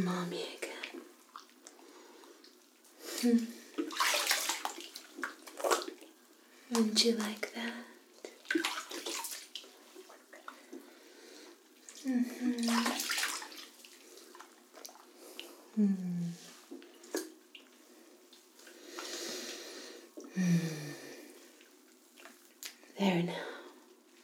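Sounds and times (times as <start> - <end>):
water running in a bathtub while something is rinsed: 0.0 - 24.2
speech: 3.2 - 4.1, 6.7 - 7.8.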